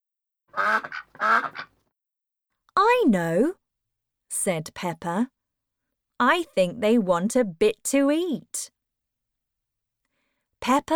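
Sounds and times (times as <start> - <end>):
ducks quacking on a river: 0.5 - 1.8
speech: 0.6 - 1.7, 3.0 - 3.6, 4.3 - 5.4, 6.2 - 8.8, 10.6 - 10.9.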